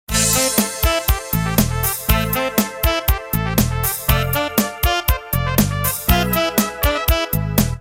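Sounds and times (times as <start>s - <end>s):
trumpet SMS message tone: 0.1s - 7.4s.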